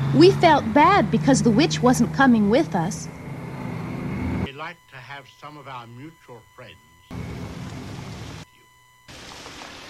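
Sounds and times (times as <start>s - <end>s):
speech: 0.1s - 3.2s, 4.6s - 6.9s
rain: 7.1s - 8.4s, 9.1s - 9.8s.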